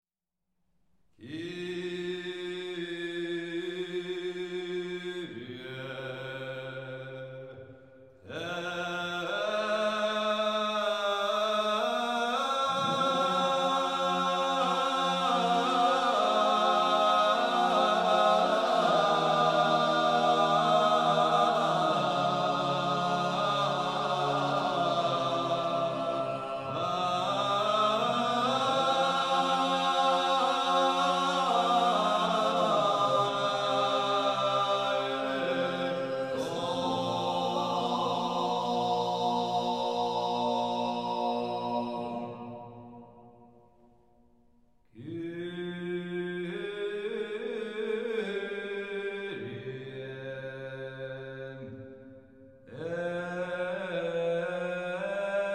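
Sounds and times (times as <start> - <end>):
Corsican choir chanting a kyrie in organum: 1.2 - 43.3, 45.0 - 52.0, 52.7 - 55.5.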